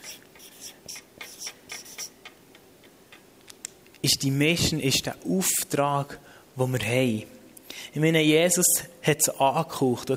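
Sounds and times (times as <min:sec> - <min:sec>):
handwriting strokes writing a single word: 0:00.0 - 0:02.4
speech: 0:04.0 - 0:10.1.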